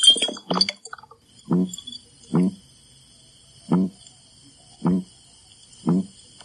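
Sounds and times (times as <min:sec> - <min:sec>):
red-bellied piranha croaking while held out of water: 0:00.4 - 0:02.6, 0:03.7 - 0:04.0, 0:04.8 - 0:05.1, 0:05.8 - 0:06.1.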